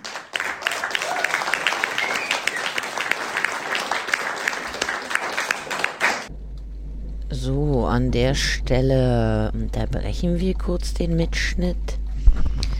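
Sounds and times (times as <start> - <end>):
crowd applauding: 0.0 - 6.3
speech: 7.4 - 12.0.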